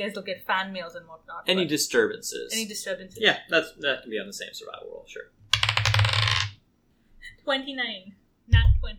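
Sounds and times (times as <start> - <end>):
speech: 0.0 - 5.4, 7.4 - 8.9
dice rattling on a hard tabletop: 5.5 - 6.6.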